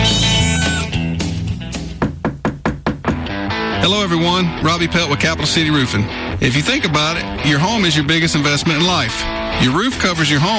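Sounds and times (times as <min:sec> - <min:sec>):
cat meowing: 0:00.0 - 0:01.0
sharp evenly spaced thumps: 0:01.8 - 0:03.4
speech: 0:03.9 - 0:10.5.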